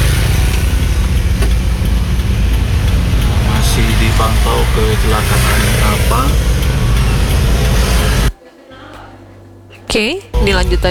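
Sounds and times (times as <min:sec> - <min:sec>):
low engine rumble of roadway traffic: 0:00.0 - 0:08.3
cars and motorcycles idling in congested traffic on Jalan Karangduren: 0:00.0 - 0:08.4
speech: 0:09.9 - 0:10.8.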